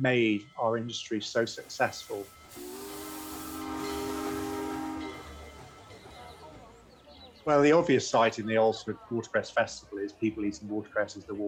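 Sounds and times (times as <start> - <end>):
speech: 0.0 - 2.6, 7.4 - 11.4
steam locomotive whistle on the Oldsford to London steam railway line: 1.4 - 6.8.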